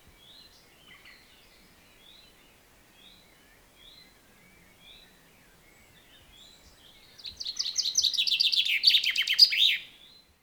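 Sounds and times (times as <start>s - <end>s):
common chaffinch Fringilla coelebs singing: 6.4s - 9.8s.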